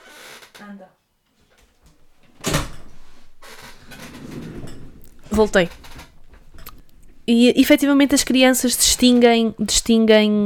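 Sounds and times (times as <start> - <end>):
speech: 0.6 - 1.0, 5.3 - 5.9, 7.3 - 10.4
door swishing as it swings open to let in a cat: 2.2 - 7.3.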